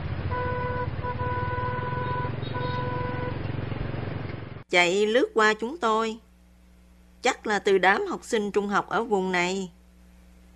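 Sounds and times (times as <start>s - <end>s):
rumble of engines and road traffic: 0.0s - 4.7s
car horns blaring: 0.2s - 3.4s
speech: 4.7s - 6.2s, 7.2s - 9.8s.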